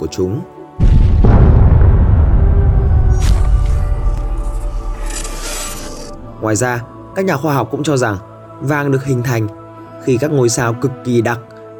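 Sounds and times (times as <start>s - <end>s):
speech: 0.0s - 0.6s, 6.4s - 11.5s
deep explosion boom and rumbling roar for a supernova: 0.8s - 6.8s
whooshing flare: 0.8s - 7.3s.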